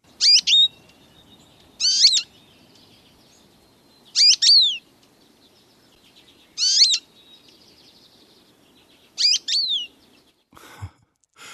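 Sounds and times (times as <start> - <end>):
American Goldfinch high-pitched calls: 0.2 - 3.4, 4.0 - 4.8, 6.3 - 10.2.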